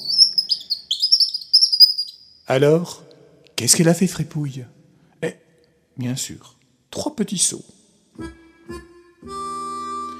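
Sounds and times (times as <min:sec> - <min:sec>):
bird chirping: 0:00.0 - 0:03.3
speech: 0:02.5 - 0:03.0, 0:03.6 - 0:05.4, 0:06.0 - 0:08.4.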